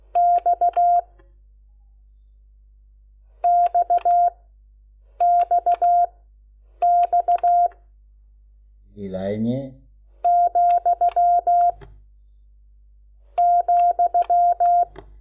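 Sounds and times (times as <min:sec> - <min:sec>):
electronic tone beeping Morse code letter X: 0:00.2 - 0:01.1, 0:03.4 - 0:04.4, 0:05.2 - 0:06.1, 0:06.8 - 0:07.7, 0:10.2 - 0:11.8, 0:13.4 - 0:14.9
speech: 0:09.0 - 0:09.8.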